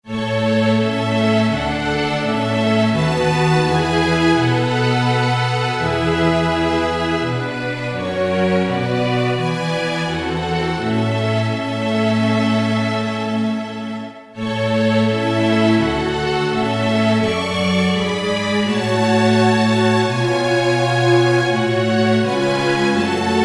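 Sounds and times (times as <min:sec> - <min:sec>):
string orchestra playing: 0:00.0 - 0:23.4.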